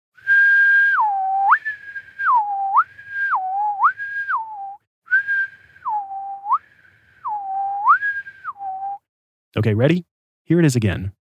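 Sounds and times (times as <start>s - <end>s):
person whistling in imitation of a test tone: 0.2s - 9.1s
speech: 9.6s - 11.2s.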